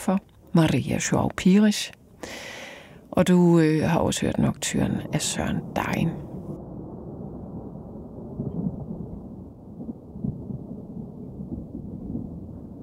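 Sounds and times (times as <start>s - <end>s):
speech: 0.1s - 2.6s, 3.2s - 6.3s
distant thunder rumbling: 3.7s - 12.8s.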